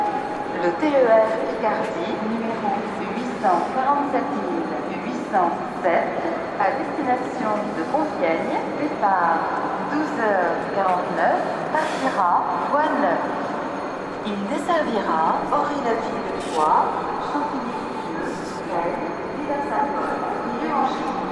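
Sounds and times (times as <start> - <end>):
train running heard from inside a second-class carriage: 0.0 - 21.3.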